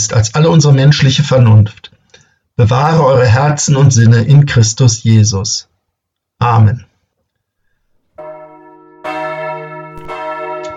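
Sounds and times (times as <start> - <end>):
speech: 0.1 - 1.9, 2.6 - 5.7, 6.4 - 6.9
church bells ringing: 8.2 - 10.7.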